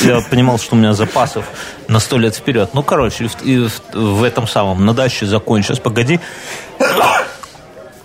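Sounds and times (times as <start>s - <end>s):
speech: 0.0s - 7.3s
person sneezing: 6.8s - 7.4s.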